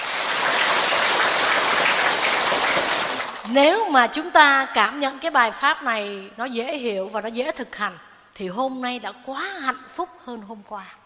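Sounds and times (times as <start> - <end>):
audience applause at a Buddhist dharma talk: 0.0 - 3.5
speech: 3.5 - 11.0.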